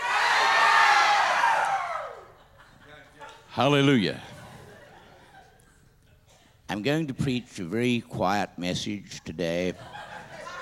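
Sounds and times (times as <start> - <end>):
large church audience shouting and cheering: 0.0 - 2.4
laughter: 2.2 - 3.5, 4.1 - 6.2, 9.7 - 10.6
speech: 3.6 - 4.4, 6.7 - 10.1.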